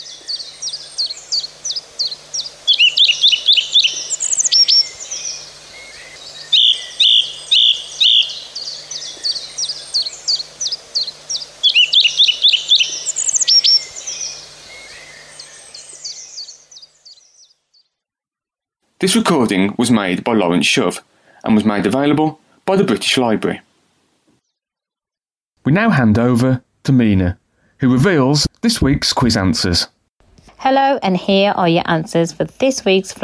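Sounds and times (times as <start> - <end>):
song thrush singing: 0.0 - 18.0
speech: 19.0 - 23.7, 25.7 - 29.9, 30.6 - 33.2.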